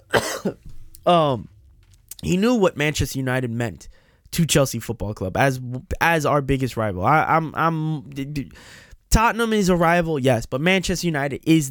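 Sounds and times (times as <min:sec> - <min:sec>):
man coughing in harsh bursts: 0:00.0 - 0:01.4
speech: 0:00.4 - 0:01.5, 0:02.2 - 0:11.6.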